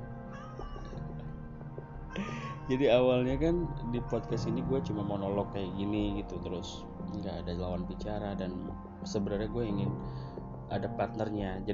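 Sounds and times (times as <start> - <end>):
cat meowing: 0.3 - 1.0
speech: 2.2 - 11.7.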